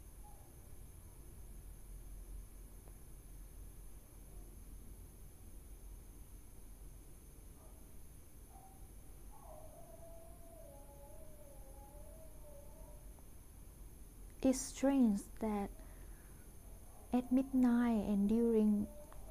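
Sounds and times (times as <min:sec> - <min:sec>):
hiss: 0:00.0 - 0:19.2
dog yelp: 0:08.5 - 0:11.2
dog howling at night: 0:08.6 - 0:13.2, 0:18.7 - 0:19.2
speech: 0:14.4 - 0:15.8, 0:17.1 - 0:19.0.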